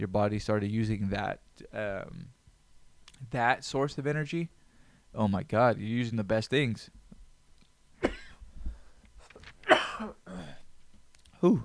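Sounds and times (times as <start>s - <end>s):
speech: 0.0s - 2.4s, 3.2s - 7.0s, 11.4s - 11.6s
person clearing throat: 8.0s - 8.4s, 9.6s - 10.6s
person coughing irritated by using wax pens: 8.0s - 8.4s, 9.6s - 10.6s.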